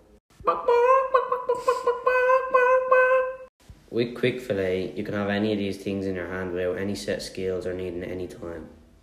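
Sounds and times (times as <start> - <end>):
chicken clucking: 0.4 - 3.4
speech: 3.9 - 8.8.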